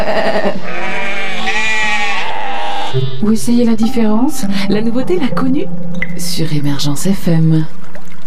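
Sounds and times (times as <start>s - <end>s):
speech: 0.0s - 0.9s, 3.0s - 8.2s
herd of sheep bleating: 0.3s - 3.2s.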